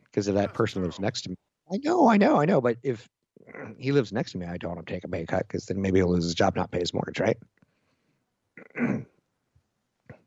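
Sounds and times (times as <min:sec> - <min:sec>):
speech: 0:00.2 - 0:07.5
person clearing phlegm from the throat: 0:00.4 - 0:01.2, 0:03.5 - 0:04.0, 0:08.6 - 0:09.2.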